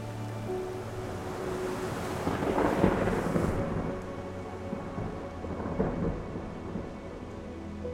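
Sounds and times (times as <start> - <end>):
steady rain in a storm: 0.0 - 7.9
storm wind: 0.0 - 7.9
deep rolling thunder: 1.0 - 7.3.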